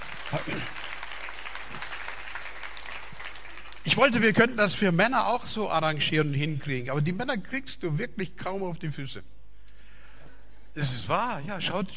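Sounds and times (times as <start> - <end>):
crowd clapping: 0.0 - 4.6
speech: 0.3 - 0.9, 3.9 - 9.4, 10.8 - 11.9.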